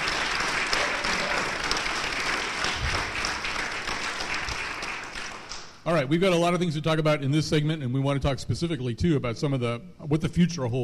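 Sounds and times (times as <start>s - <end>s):
live audience applause in the dinosaur hall of a natural history museum: 0.0s - 5.7s
speech: 5.8s - 10.8s.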